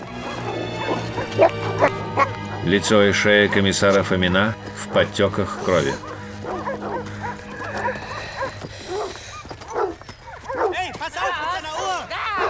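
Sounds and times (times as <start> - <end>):
dog set loose on a prisoner barking and yelping: 0.1 - 2.7, 5.9 - 12.4
speech: 2.6 - 6.1.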